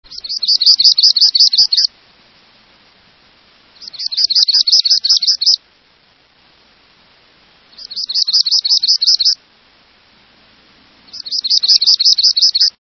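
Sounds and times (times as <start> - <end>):
palm warbler: 0.0 - 3.0, 3.6 - 5.7, 7.6 - 9.4, 11.0 - 12.8.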